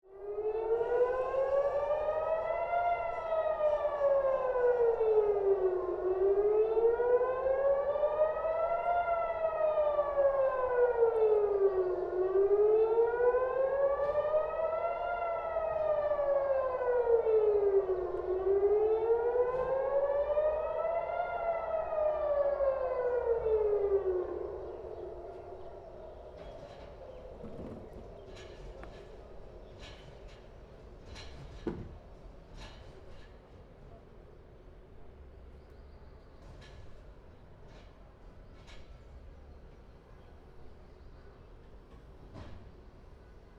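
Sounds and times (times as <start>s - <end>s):
siren rising and falling: 0.2s - 29.1s.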